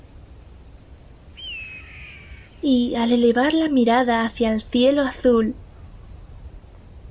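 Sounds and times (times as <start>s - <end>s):
low wind-like rumble: 0.0s - 7.0s
high piercing eagle cry: 1.4s - 2.7s
speech: 2.6s - 5.6s.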